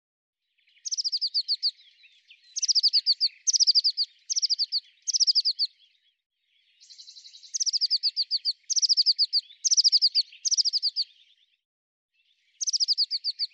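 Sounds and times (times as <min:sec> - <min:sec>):
Eurasian blue tit calls: 0:00.7 - 0:05.8, 0:06.8 - 0:11.3, 0:12.6 - 0:13.5.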